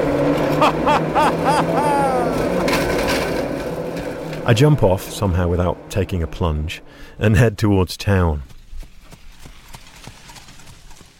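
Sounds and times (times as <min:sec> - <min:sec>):
laughter: 0:00.4 - 0:02.6
continuous rolling background of a passing horse-drawn cart: 0:02.0 - 0:05.5, 0:08.9 - 0:11.1
speech: 0:04.5 - 0:08.5
horse hooves clip-clopping as a horse-drawn cart passes: 0:08.3 - 0:11.1.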